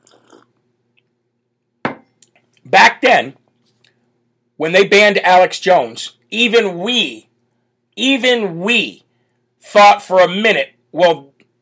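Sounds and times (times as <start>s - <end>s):
glass being set down: 1.9s - 2.1s
speech: 2.6s - 3.4s, 4.6s - 7.3s, 8.0s - 9.0s, 9.6s - 11.3s.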